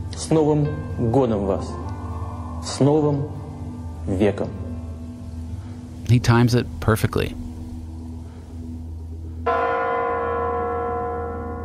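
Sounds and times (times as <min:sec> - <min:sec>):
speech: 0:00.2 - 0:01.9, 0:02.6 - 0:03.4, 0:04.0 - 0:04.6, 0:06.1 - 0:07.4
deep strike of clock bells chiming in the new year in Russia: 0:09.5 - 0:11.6.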